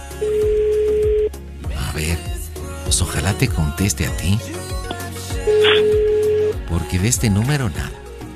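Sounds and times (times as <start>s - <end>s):
steady telephone tone during a phone call: 0.2s - 1.3s, 5.5s - 6.6s
speech: 3.0s - 4.7s, 6.7s - 8.0s.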